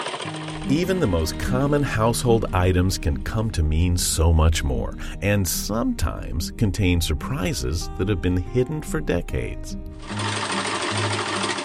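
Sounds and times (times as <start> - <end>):
sewing machine running: 0.0 - 1.8, 10.0 - 11.6
speech: 0.7 - 10.3.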